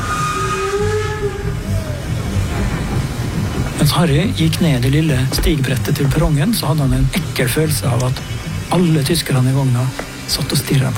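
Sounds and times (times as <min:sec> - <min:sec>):
train brakes squealing as it slows into a station: 0:00.0 - 0:03.2
train wheels rumbling on track: 0:00.0 - 0:08.3
speech: 0:03.9 - 0:10.9.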